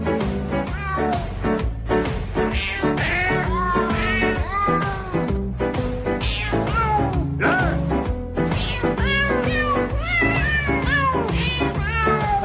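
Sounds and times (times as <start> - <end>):
full musical backing: 0.0 - 12.4
cat meows pitched and sequenced into a Christmas song: 0.6 - 1.4, 2.4 - 5.3, 6.2 - 7.7, 8.5 - 12.4.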